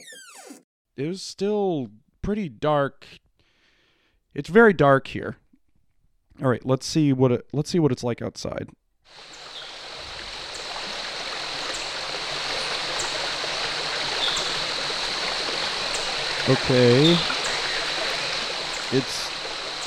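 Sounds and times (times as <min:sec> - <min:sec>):
speech: 0:01.0 - 0:03.2, 0:04.4 - 0:05.4, 0:06.4 - 0:09.4, 0:16.5 - 0:17.4, 0:18.9 - 0:19.3
steady rushing water flowing around a building outside a door: 0:09.1 - 0:19.8.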